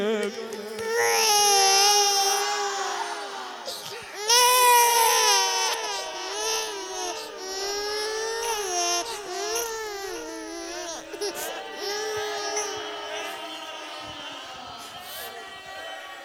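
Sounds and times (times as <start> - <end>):
baby crying loudly: 0.0 - 15.4
laughter: 0.0 - 16.2.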